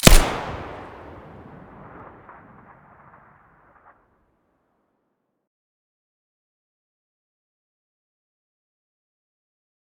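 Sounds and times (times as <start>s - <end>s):
Colt 1911 pistol muzzle blast: 0.0s - 1.9s.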